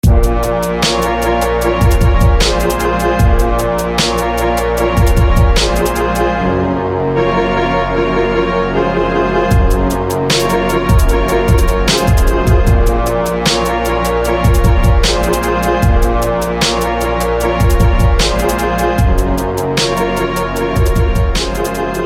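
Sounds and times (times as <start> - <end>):
dragon fire horn blowing: 0.0 - 22.0.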